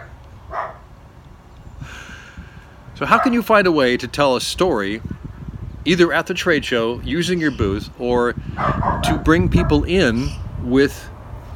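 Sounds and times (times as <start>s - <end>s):
dog barking: 0.5s - 0.8s, 3.1s - 3.4s, 8.6s - 9.8s
speech: 3.0s - 5.2s, 5.8s - 11.1s.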